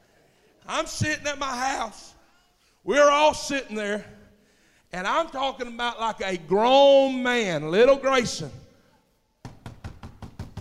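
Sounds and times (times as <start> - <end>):
speech: 0.7 - 2.2, 2.8 - 4.2, 4.9 - 8.6
knocking on a door: 9.4 - 10.5.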